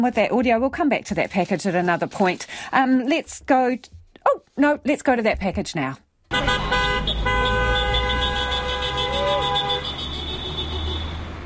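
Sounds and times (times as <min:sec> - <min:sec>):
speech: 0:00.0 - 0:06.6
steady traffic rumble: 0:05.0 - 0:11.4
car horns honking at a protest: 0:06.3 - 0:11.3.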